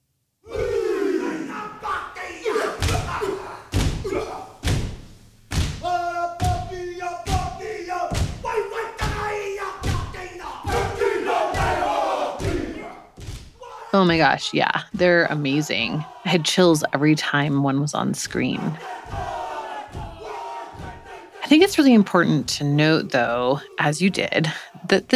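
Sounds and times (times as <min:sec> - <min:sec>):
group chanting in unison while performing a Māori haka at a hui: 0:00.4 - 0:04.6, 0:05.8 - 0:24.8
heavy rhythmic stomps and thuds of a Māori haka: 0:02.4 - 0:22.6
speech: 0:14.0 - 0:19.3, 0:21.5 - 0:25.1.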